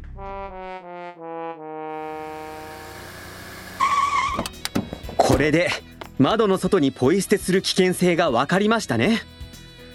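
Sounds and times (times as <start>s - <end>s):
car engine revving through rising gears: 2.0s - 5.0s
car tires screeching in a skid: 2.2s - 5.2s
speech: 4.4s - 4.6s, 5.4s - 9.3s.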